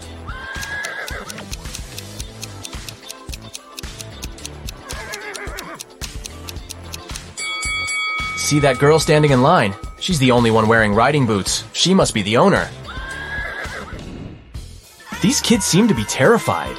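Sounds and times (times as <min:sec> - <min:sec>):
horse neighing: 0:00.2 - 0:01.6, 0:04.8 - 0:05.8, 0:12.8 - 0:14.0, 0:15.0 - 0:16.7
clattering ticking noises: 0:00.5 - 0:10.7
speech: 0:08.5 - 0:12.8, 0:15.2 - 0:16.7.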